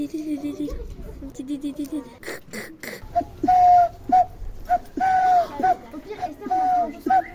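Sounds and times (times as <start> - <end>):
turtle dove cooing: 2.2 - 7.3.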